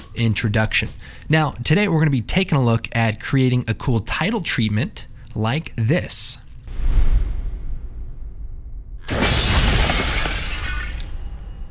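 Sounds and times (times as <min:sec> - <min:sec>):
speech: 0:00.2 - 0:06.4
low rumbling buildup: 0:06.7 - 0:09.1
shattering glass sound effect with tinkling shards: 0:09.0 - 0:11.6.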